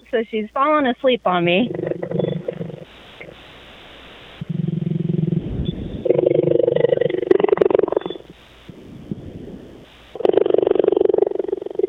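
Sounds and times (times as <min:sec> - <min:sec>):
speech: 0:00.1 - 0:01.8
cheetah purring while half asleep on a person on a hot day: 0:01.3 - 0:03.4, 0:04.4 - 0:08.4, 0:09.1 - 0:11.8.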